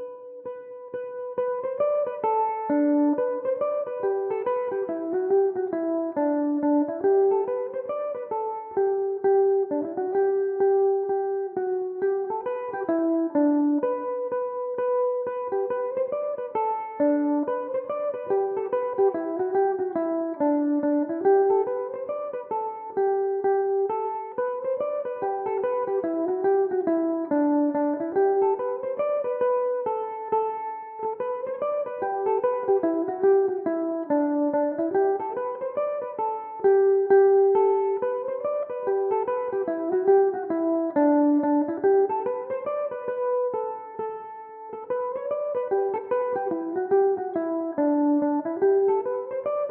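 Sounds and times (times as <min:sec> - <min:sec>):
mandolin playing a set of barndances: 0:00.6 - 0:49.6.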